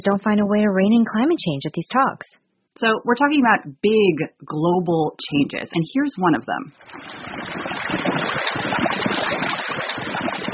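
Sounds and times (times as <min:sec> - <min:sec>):
speech: 0:00.0 - 0:08.1
meltwater river flowing on top of the Greenland ice sheet during summer melt: 0:06.9 - 0:10.5.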